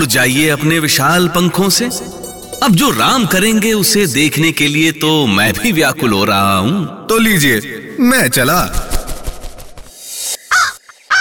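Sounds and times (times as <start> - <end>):
speech: 0.0 - 8.9
crow cawing: 10.5 - 11.2.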